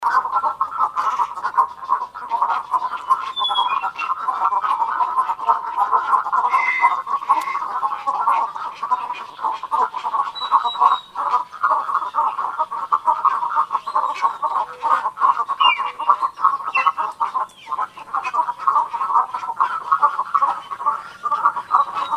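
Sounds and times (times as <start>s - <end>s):
cattle egret chorus croaking: 0.0s - 22.1s
high whistle: 3.4s - 3.9s.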